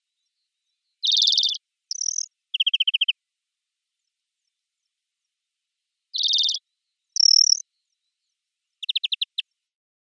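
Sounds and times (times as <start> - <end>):
European greenfinch Chloris chloris calls: 1.0 - 3.2, 6.2 - 6.6, 7.2 - 7.6, 8.8 - 9.4.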